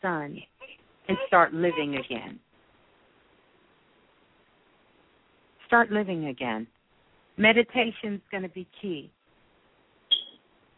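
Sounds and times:
speech: 0.0 - 0.5, 1.1 - 2.5, 5.7 - 6.8, 7.4 - 9.2
short high-pitched electronic chirp from a smoke detector: 10.1 - 10.4.

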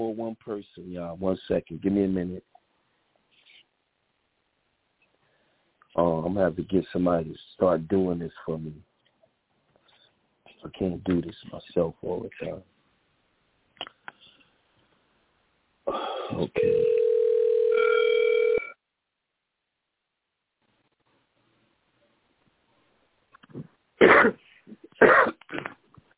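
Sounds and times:
speech: 0.0 - 2.6, 6.0 - 8.9, 10.6 - 12.7, 15.9 - 17.0
person coughing over telephone line: 15.9 - 16.8, 24.0 - 25.8
telephone dial tone humming: 16.5 - 18.7.

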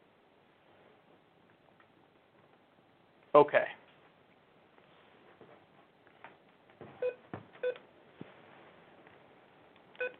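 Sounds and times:
speech: 3.4 - 3.8
two-tone electronic beeps: 7.0 - 7.8.

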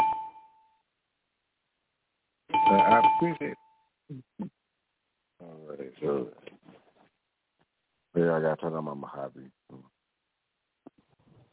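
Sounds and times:
single bell struck: 0.0 - 0.4, 2.5 - 3.7
speech: 2.9 - 4.6, 5.5 - 6.4, 8.2 - 9.9.

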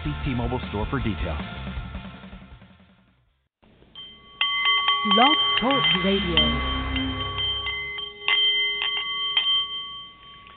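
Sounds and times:
speech: 0.0 - 1.8, 5.0 - 6.9
Nepalese meditation bowl chiming with shimmering overtones: 3.7 - 10.5.

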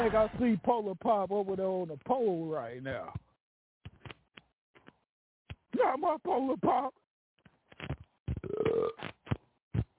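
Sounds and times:
speech: 0.0 - 3.3, 5.8 - 7.0
long loud croaking burp: 8.4 - 9.0.

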